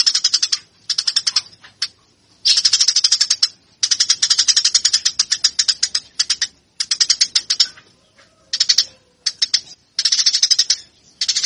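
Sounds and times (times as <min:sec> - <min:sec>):
Eurasian tree sparrow chirping in fighting-style song: 0:00.0 - 0:11.4.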